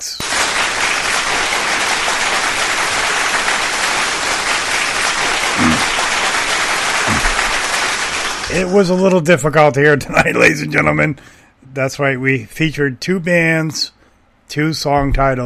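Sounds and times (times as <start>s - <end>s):
crowd applause: 0.2s - 8.7s
speech: 8.6s - 15.4s.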